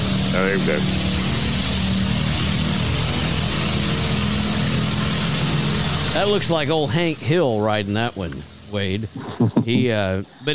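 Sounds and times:
small Kohler gasoline engine running: 0.0 - 10.5
speech: 0.4 - 1.0, 6.2 - 10.5
laughter: 8.9 - 10.5.

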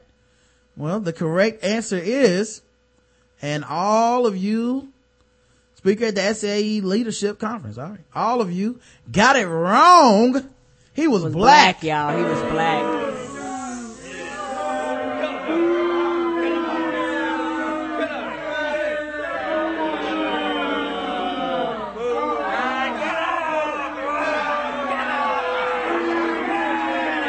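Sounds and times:
speech: 0.8 - 2.7, 3.4 - 4.9, 5.8 - 13.0
large crowd booing: 12.1 - 27.2
scattered shouts and whoops from the crowd: 12.1 - 27.2.

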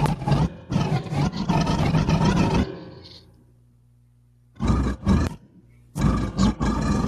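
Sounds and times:
deep gorilla-like roar from a voice through a distorting filter: 0.0 - 3.2, 4.6 - 7.0.

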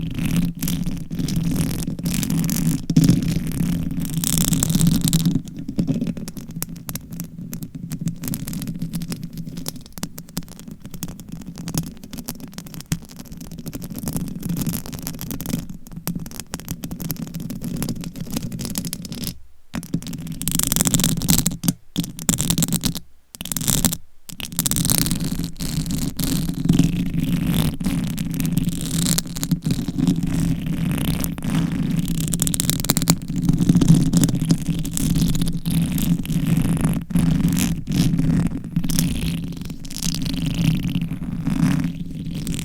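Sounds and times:
long nails scratching on a microphone: 0.0 - 42.6.

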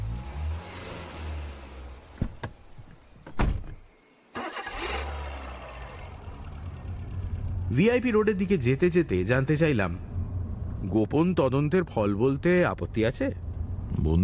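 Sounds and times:
car driving away: 0.0 - 14.2
sharp door-like thunks: 2.2 - 2.6, 3.2 - 3.8
speech: 7.7 - 10.1, 10.9 - 14.2.

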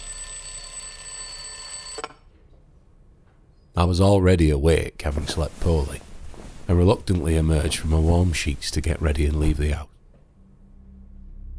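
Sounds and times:
electronic alarm clock buzzing: 0.0 - 2.1
speech: 3.8 - 6.1, 6.7 - 9.9.

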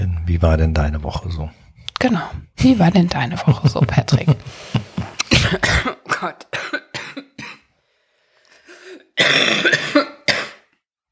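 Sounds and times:
speech: 0.3 - 4.8
laughter: 2.7 - 5.5
person coughing: 5.1 - 7.7, 8.8 - 10.7.

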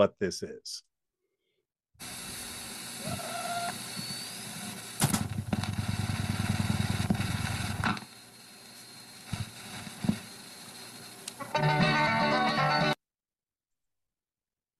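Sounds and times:
speech: 0.0 - 0.9, 2.0 - 2.2
8-track tape player tape hiss: 2.0 - 12.9
8-track tape player loud mechanical rumble: 2.1 - 11.5.

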